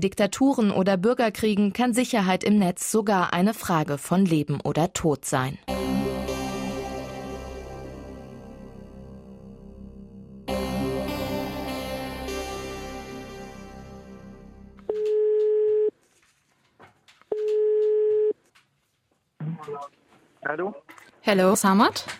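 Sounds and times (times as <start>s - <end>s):
speech: 0.0s - 5.8s, 20.4s - 22.1s
music: 5.7s - 14.9s
telephone line ringing tone as a call is placed to a location in Germany: 14.8s - 15.9s, 17.3s - 18.4s.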